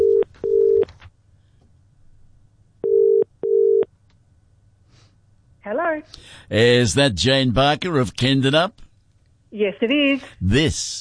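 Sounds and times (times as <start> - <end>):
telephone line dialing tones through a handset: 0.0 - 0.9, 2.8 - 3.9
speech: 5.6 - 8.8, 9.5 - 10.9.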